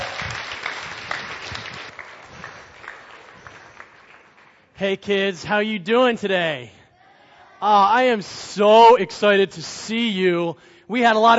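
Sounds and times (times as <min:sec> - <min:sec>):
audience applause with many hands clapping: 0:00.0 - 0:04.7
speech: 0:04.8 - 0:06.8, 0:07.6 - 0:11.3.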